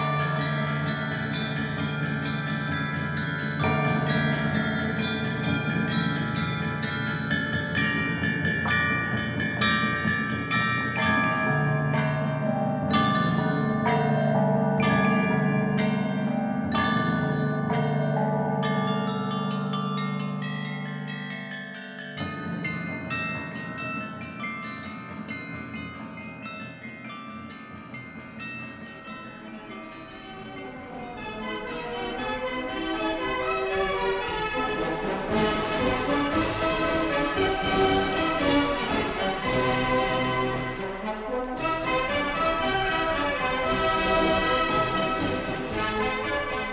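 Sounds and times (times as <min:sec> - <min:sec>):
set of 65 bronze chime bells struck: 0:00.0 - 0:46.7.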